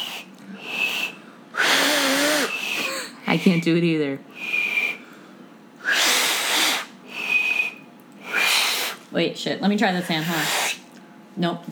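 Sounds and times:
person attempting to whistle through fingers: 0:00.0 - 0:03.6, 0:04.4 - 0:09.0
speech: 0:03.3 - 0:04.4, 0:09.2 - 0:10.6, 0:11.4 - 0:11.7.

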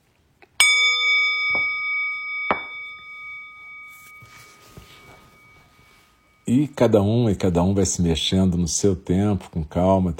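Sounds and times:
meditation bell struck to end meditation practice: 0:00.6 - 0:07.8
speech: 0:06.5 - 0:10.1.

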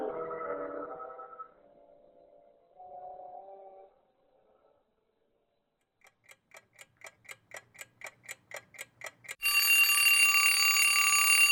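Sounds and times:
clock ticking: 0:05.9 - 0:09.9
mechanical alarm clock ringing: 0:06.1 - 0:11.5.

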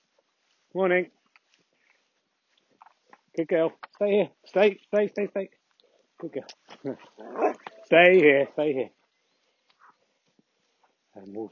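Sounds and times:
speech: 0:00.7 - 0:01.2, 0:03.4 - 0:05.6, 0:06.2 - 0:09.0, 0:11.2 - 0:11.5
dog barking at another dog: 0:07.2 - 0:07.6.

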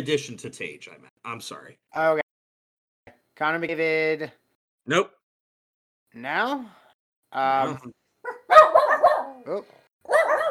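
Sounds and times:
speech: 0:00.0 - 0:02.2, 0:03.4 - 0:05.2, 0:06.1 - 0:08.0, 0:09.4 - 0:10.2
dogs barking excitedly: 0:08.3 - 0:09.4, 0:10.0 - 0:10.5.

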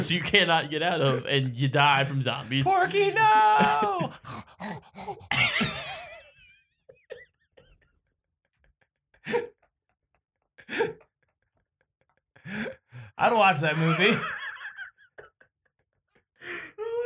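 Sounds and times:
speech: 0:00.0 - 0:05.9, 0:09.3 - 0:09.5, 0:10.7 - 0:11.0, 0:12.5 - 0:14.5
laughter: 0:00.0 - 0:07.8, 0:13.3 - 0:16.0
person imitating a dog with whining and yelping: 0:03.8 - 0:05.6
short sharp bark-like huffs from a person: 0:04.2 - 0:05.5.

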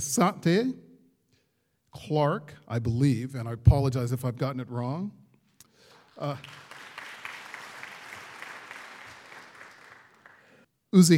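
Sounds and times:
speech: 0:00.0 - 0:00.8, 0:02.0 - 0:05.2, 0:06.2 - 0:06.6, 0:10.9 - 0:11.1
audience applause: 0:05.9 - 0:10.6.

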